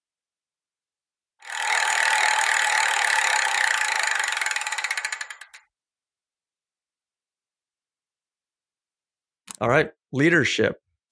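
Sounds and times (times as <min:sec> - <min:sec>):
prize wheel spinning: 0:01.4 - 0:05.7
speech: 0:09.6 - 0:10.8.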